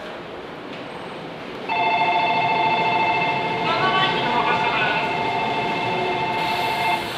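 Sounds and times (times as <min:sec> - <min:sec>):
bell at Shinkawasaki: 0:01.7 - 0:07.0.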